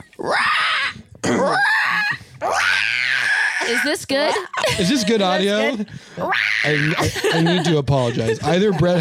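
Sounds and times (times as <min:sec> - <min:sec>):
speech: 0:00.0 - 0:00.5, 0:03.8 - 0:09.0
person imitating a raptor dinosaur scream: 0:00.2 - 0:07.1
laughter: 0:04.2 - 0:05.9, 0:06.7 - 0:09.0.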